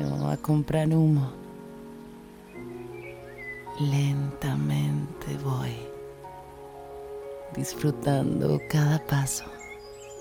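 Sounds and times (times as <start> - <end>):
rain falling steadily: 0.0 - 10.1
speech: 0.3 - 1.4, 3.8 - 5.9, 7.5 - 9.6.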